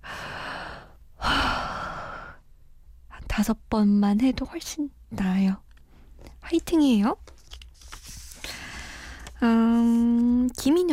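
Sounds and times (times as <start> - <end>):
deep breath in and out: 0.0 - 2.4, 8.4 - 9.4
speech: 3.4 - 5.6, 6.5 - 7.3, 9.4 - 10.9.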